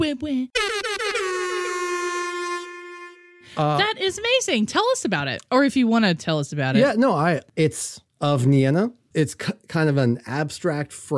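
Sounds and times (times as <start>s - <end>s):
speech: 0.0s - 0.8s, 3.6s - 11.1s
loud brassy air horn blasts: 0.6s - 3.7s.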